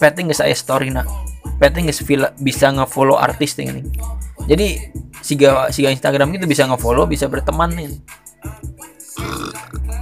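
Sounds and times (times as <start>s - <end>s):
speech: 0.0s - 9.8s
person burping: 9.2s - 9.8s.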